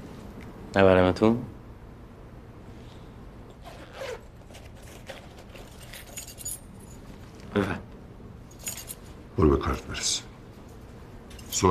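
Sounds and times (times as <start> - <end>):
speech: 0.7 - 1.6, 9.4 - 10.2
bunch of storeroom keys jangling: 4.6 - 7.1, 8.5 - 9.1, 11.3 - 11.6.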